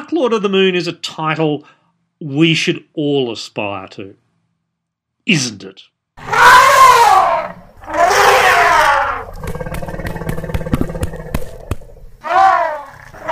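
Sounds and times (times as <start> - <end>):
speech: 0.2 - 4.2, 5.3 - 6.7
elephant trumpeting: 6.2 - 13.2.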